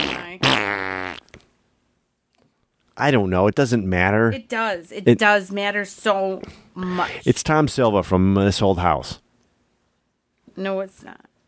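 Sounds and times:
loud buzzy fart: 0.0s - 1.4s
speech: 0.4s - 1.0s, 3.0s - 9.2s, 10.6s - 11.3s.

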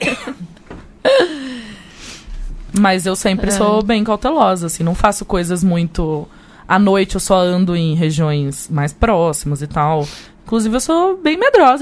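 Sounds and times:
person coughing harshly with voiced rasp: 0.0s - 1.7s
speech: 2.8s - 11.8s.

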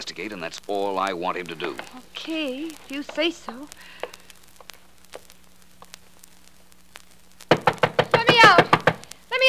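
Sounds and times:
speech: 0.0s - 4.1s
fist banging on a door: 7.5s - 9.0s.

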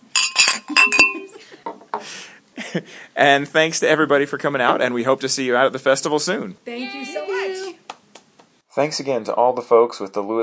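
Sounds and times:
glasses clinking together in a toast at a brewery: 0.0s - 1.4s
speech: 0.6s - 1.2s, 2.8s - 7.3s, 8.8s - 10.4s.

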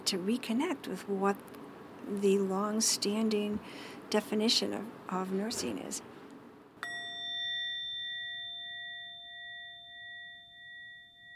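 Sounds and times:
speech: 0.1s - 6.2s
singing bowl struck and ringing: 6.8s - 11.3s.

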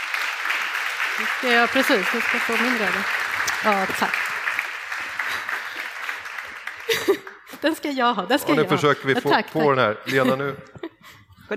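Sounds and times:
audience applause: 0.0s - 7.9s
speech: 1.2s - 4.3s, 7.6s - 10.7s
laughter: 5.0s - 11.2s.

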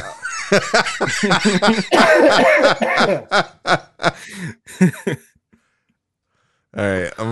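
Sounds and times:
breathy laugh-like sounds: 0.0s - 5.3s
speech: 0.5s - 5.3s, 6.8s - 7.3s
person in a loud coughing fit with rapid hacking bursts: 1.4s - 3.3s.

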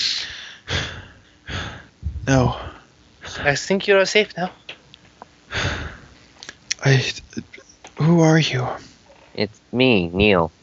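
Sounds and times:
person lying on the ground gasping for breath: 0.0s - 3.4s, 5.5s - 6.1s
speech: 2.3s - 2.6s, 3.4s - 4.6s, 6.8s - 10.6s.

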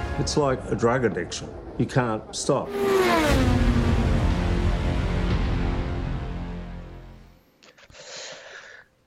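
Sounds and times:
speech: 0.2s - 3.7s
engines revving in a motorsport film trailer: 1.5s - 6.7s.

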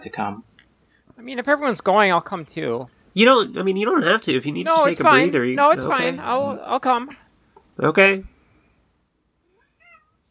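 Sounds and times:
speech: 0.0s - 0.5s, 1.2s - 7.2s, 7.8s - 8.3s
small cat meowing: 9.5s - 10.2s.

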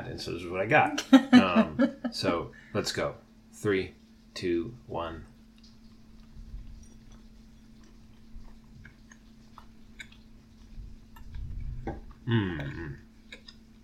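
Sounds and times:
speech: 0.1s - 5.3s, 12.3s - 13.0s
laughter: 1.1s - 2.2s
moist chewing of a vegan gluten-free brownie: 5.3s - 13.8s.

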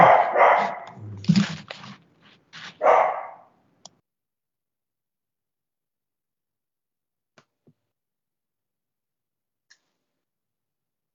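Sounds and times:
household dog barking at visitors: 0.0s - 1.9s, 2.6s - 3.5s.

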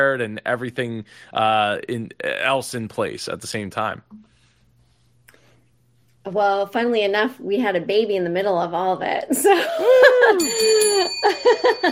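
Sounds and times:
speech: 0.0s - 4.3s, 6.2s - 11.8s
bright bell rings: 10.4s - 11.8s.

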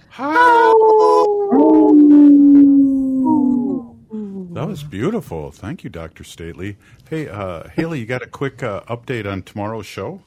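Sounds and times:
speech: 0.2s - 0.5s, 4.7s - 10.2s
wolves howling together: 0.2s - 4.0s.

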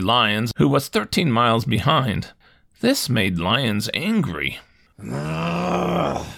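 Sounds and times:
speech: 0.0s - 6.3s
man growling groan of annoyance: 5.0s - 6.3s.

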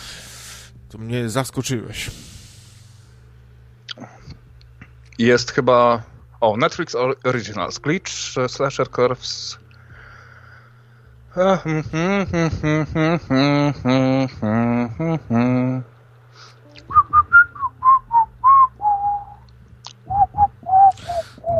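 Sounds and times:
speech: 0.9s - 2.4s, 5.2s - 9.6s, 11.4s - 15.9s
person humming sung syllables: 11.3s - 15.9s, 16.6s - 21.5s
person whistling a short tune: 16.8s - 19.4s, 20.1s - 21.5s.

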